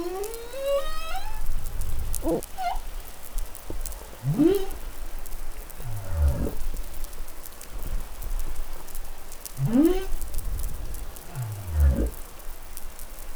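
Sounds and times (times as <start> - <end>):
humpback whale song in New Caledonia: 0.0 - 5.0, 5.8 - 6.8, 9.6 - 12.2
humpback whale low grunt: 0.0 - 6.9, 9.6 - 12.5.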